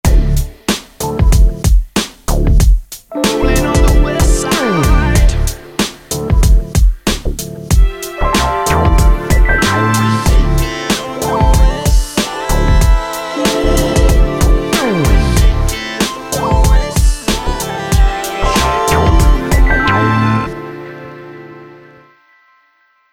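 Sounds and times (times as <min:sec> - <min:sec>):
West Coast hip hop music: 0:00.1 - 0:22.1.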